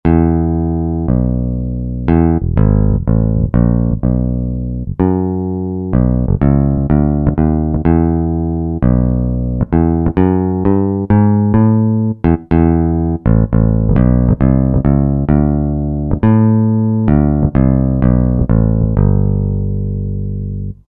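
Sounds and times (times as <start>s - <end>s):
picked bass from Roland SR-JV80-17 Country Collection: 0.0s - 20.8s.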